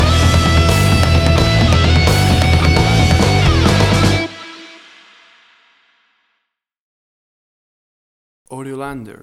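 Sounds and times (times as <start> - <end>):
angry heavy rock metal music stinger: 0.0 - 5.8.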